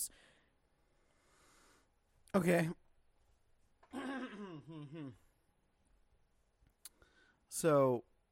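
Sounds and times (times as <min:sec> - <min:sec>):
speech: 0:02.3 - 0:02.8, 0:04.7 - 0:05.3, 0:07.6 - 0:08.1
throat clearing: 0:03.8 - 0:05.3.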